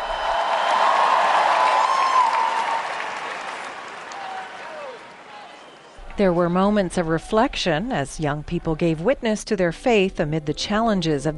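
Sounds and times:
large crowd clapping: 0:00.0 - 0:06.0
whistles: 0:00.0 - 0:06.0
speech: 0:06.2 - 0:11.3.

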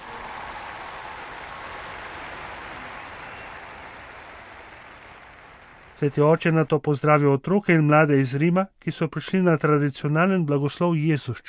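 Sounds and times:
large audience applauding for catechists: 0:00.0 - 0:06.7
speech: 0:06.0 - 0:11.4.

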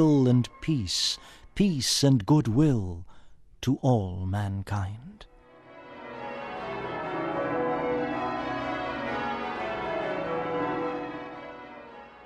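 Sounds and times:
speech: 0:00.0 - 0:05.3
church bells pealing for Christmas: 0:05.6 - 0:12.2.

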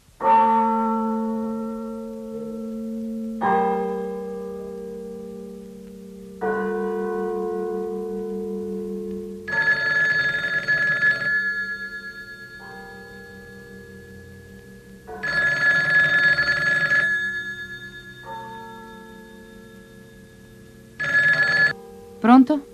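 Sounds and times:
church bell tolling: 0:00.2 - 0:22.7
speech: 0:22.4 - 0:22.7.

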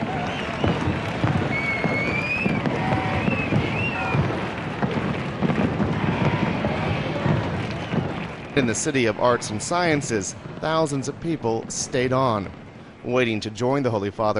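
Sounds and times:
rising fireworks whistles: 0:00.0 - 0:11.1
fireworks booming and crackling overhead: 0:00.0 - 0:14.3
large crowd murmuring: 0:00.0 - 0:14.3
speech: 0:08.6 - 0:14.3.

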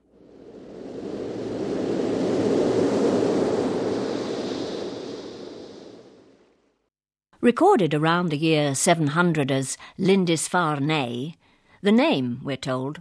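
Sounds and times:
sea surf on the shore of a tidal island: 0:00.0 - 0:06.6
speech: 0:07.4 - 0:13.0.

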